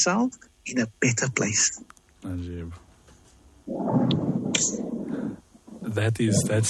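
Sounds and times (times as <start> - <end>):
speech: 0.0 - 2.8, 3.7 - 5.0, 5.9 - 6.6
low rolling rumble of thunder: 3.7 - 6.6.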